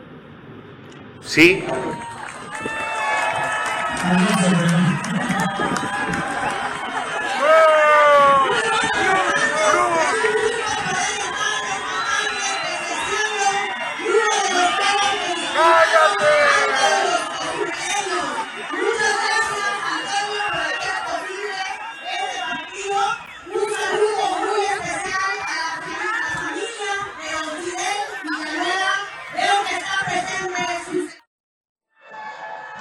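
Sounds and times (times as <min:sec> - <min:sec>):
speech: 0:01.2 - 0:02.9, 0:04.0 - 0:06.3
large crowd booing a president at her presentation: 0:01.2 - 0:30.4, 0:32.0 - 0:32.8
people shouting and yelling: 0:01.3 - 0:02.2, 0:07.2 - 0:10.3, 0:14.0 - 0:21.1.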